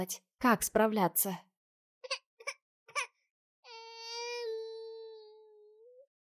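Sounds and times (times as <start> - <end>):
speech: 0.0 - 2.2
baby crying: 2.0 - 6.1.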